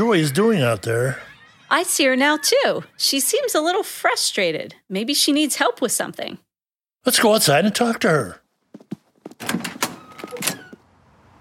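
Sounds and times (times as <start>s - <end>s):
speech: 0.0s - 6.4s, 7.0s - 8.4s, 9.4s - 9.7s
door swinging shut: 9.3s - 10.9s
door latch catching: 9.4s - 10.8s.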